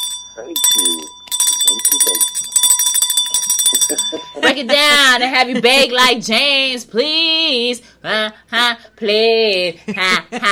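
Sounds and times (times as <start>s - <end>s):
bright metallic bell ringing: 0.0s - 4.7s
speech: 0.4s - 2.7s, 3.7s - 10.5s
people laughing: 3.7s - 6.0s, 9.8s - 10.5s.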